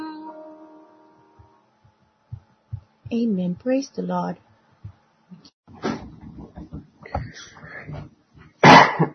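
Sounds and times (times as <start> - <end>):
speech: 3.1 - 4.5
harsh coughing: 8.6 - 9.1.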